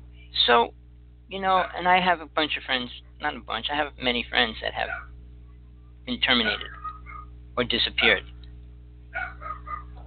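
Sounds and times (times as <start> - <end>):
steady low hum: 0.0 - 10.0
speech: 0.5 - 5.1, 6.1 - 6.8, 7.6 - 8.3
dog barking excitedly with high barks: 1.5 - 2.0, 4.8 - 5.2, 6.3 - 7.4, 8.0 - 8.2, 9.1 - 10.0.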